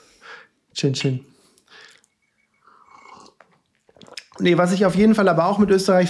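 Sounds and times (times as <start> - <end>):
speech: 0.8 - 1.3, 4.4 - 6.0
swallowing: 1.8 - 4.5
person slurping coffee: 2.7 - 4.5
quiet mouth clicks: 3.4 - 4.4.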